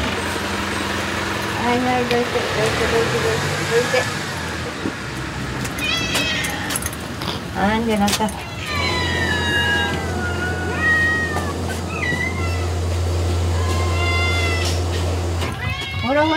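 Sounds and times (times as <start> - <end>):
outdoor noise: 0.0 - 16.3
steady low engine hum: 0.0 - 16.3
speech: 1.7 - 4.2, 4.8 - 5.0, 7.6 - 8.5, 16.1 - 16.3
island cats meowing before feeding outside a shop: 5.7 - 7.6, 8.3 - 16.3.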